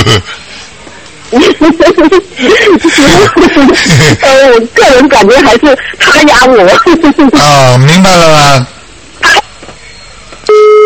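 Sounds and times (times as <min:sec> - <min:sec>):
speech: 0:00.1 - 0:00.4, 0:01.3 - 0:09.4
laughter: 0:01.3 - 0:04.2, 0:06.7 - 0:07.6
phone line disconnect beep: 0:09.9 - 0:10.8.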